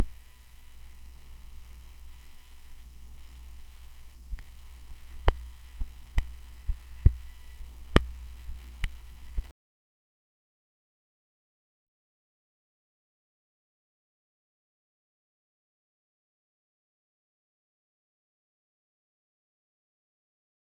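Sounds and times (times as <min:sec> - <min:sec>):
soft static creaks of vinyl: 0:00.0 - 0:09.5.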